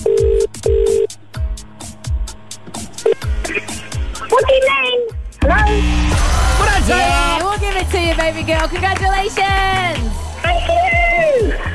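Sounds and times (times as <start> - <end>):
electronic phone ringing on an outgoing call: 0.0 - 1.2
thumping beat: 0.0 - 11.7
speech: 8.2 - 11.1.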